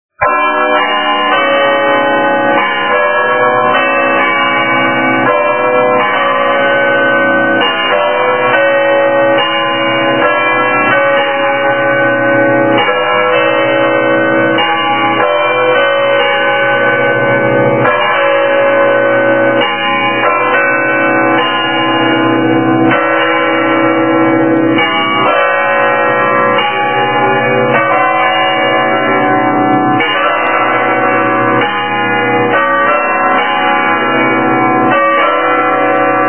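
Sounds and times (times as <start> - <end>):
bells of the tower of Pisa ringing: 0.2 - 36.2.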